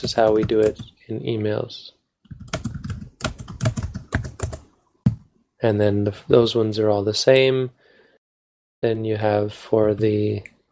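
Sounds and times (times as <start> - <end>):
computer keyboard typing: 0.0 - 0.9, 2.3 - 5.3
speech: 0.0 - 2.0, 5.6 - 7.8, 8.8 - 10.5.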